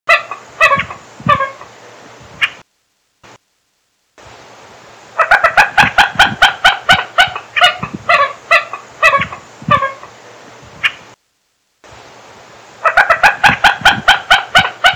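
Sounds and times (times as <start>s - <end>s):
Common gallinule Gallinula galeata calling: 0.1s - 1.8s, 2.4s - 2.6s, 5.2s - 10.2s, 12.8s - 14.9s.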